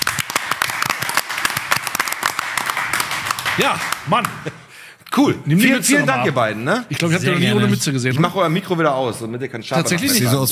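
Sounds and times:
small group clapping live in a studio: 0:00.0 - 0:05.2, 0:06.9 - 0:07.2
speech: 0:03.6 - 0:10.5.

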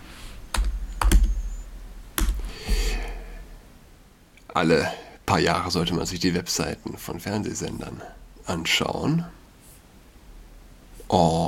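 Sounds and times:
typing on a computer keyboard to open a website: 0:00.5 - 0:01.4
speech: 0:04.6 - 0:09.4, 0:11.1 - 0:11.4.

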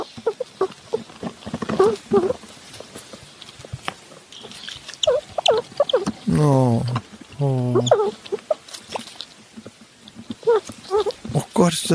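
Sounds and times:
soft high squeaks of baby squirrel: 0:00.0 - 0:02.9, 0:04.3 - 0:06.3, 0:07.4 - 0:09.2, 0:10.1 - 0:11.4
seven-week-old baby squirrel gnawing a small nut: 0:00.0 - 0:11.4
speech: 0:01.9 - 0:02.5, 0:11.6 - 0:11.9.

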